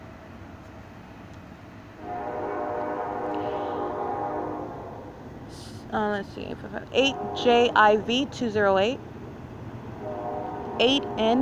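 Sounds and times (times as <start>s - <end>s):
train horn: 2.0s - 5.2s, 7.0s - 8.0s, 10.0s - 11.4s
speech: 5.9s - 9.1s, 10.8s - 11.4s.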